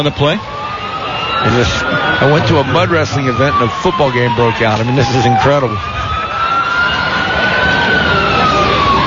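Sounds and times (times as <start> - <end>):
speech: 0.0 - 0.5, 1.4 - 6.0
siren wailing during a football game: 0.0 - 9.0
laughter: 1.4 - 3.6.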